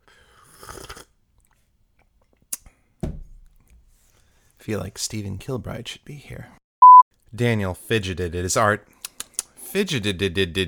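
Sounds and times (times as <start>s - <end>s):
person sipping hot tea: 0.1s - 1.6s
speech: 4.6s - 6.6s, 7.3s - 9.0s, 9.7s - 10.6s.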